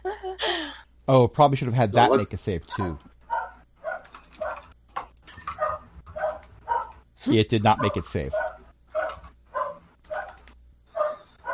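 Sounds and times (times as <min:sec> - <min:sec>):
speech: 0:01.1 - 0:03.1, 0:07.2 - 0:08.4
dog barking: 0:02.8 - 0:04.8, 0:05.6 - 0:07.0, 0:07.7 - 0:10.4, 0:11.0 - 0:11.5.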